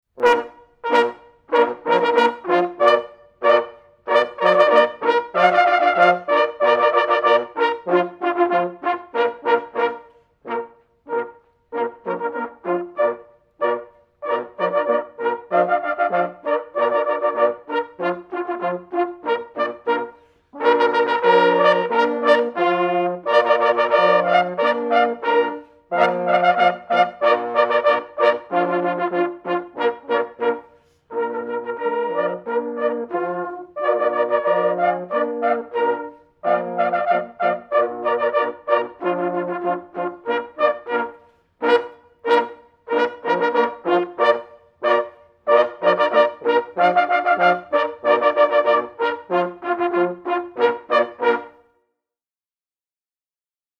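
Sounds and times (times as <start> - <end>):
hunting horn players playing a polka: 0.1 - 51.7.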